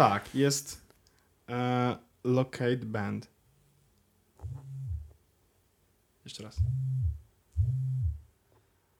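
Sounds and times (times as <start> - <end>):
speech: 0.0 - 0.8, 1.5 - 3.3, 6.3 - 8.2
fitness band vibration motor buzzing: 4.4 - 5.1, 6.6 - 8.2.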